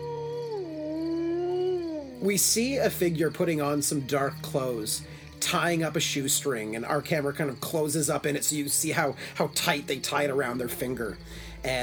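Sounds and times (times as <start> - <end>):
wolf howling: 0.0 - 2.3
speech: 2.2 - 11.8.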